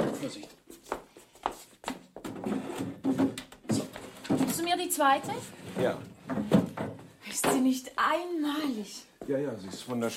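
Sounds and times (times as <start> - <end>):
speech: 0.3 - 0.5, 4.8 - 6.5, 7.4 - 10.1
wooden drawers being opened and closed: 2.2 - 7.7.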